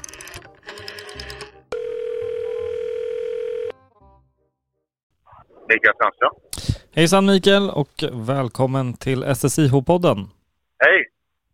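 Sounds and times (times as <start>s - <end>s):
steady telephone dial tone while a call is placed: 0.0s - 3.7s
speech: 5.7s - 10.4s.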